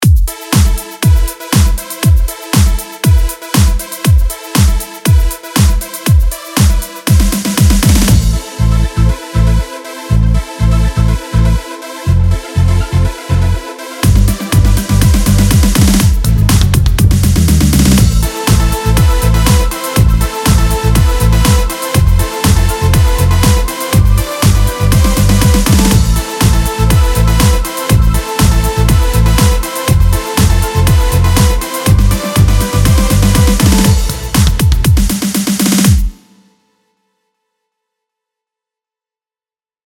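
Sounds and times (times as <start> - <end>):
EDM groove: 0.0 - 36.4.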